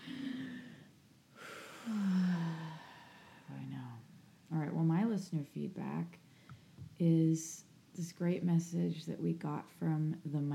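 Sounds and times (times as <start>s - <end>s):
person drawing a long deep breath in: 0.0s - 3.6s
speech: 4.8s - 6.2s, 7.0s - 10.5s.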